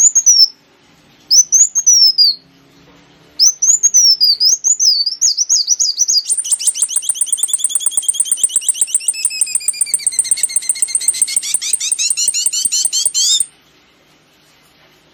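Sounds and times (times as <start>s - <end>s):
sunbird song used as a lure: 0.0s - 0.6s, 1.3s - 2.4s, 3.4s - 13.5s.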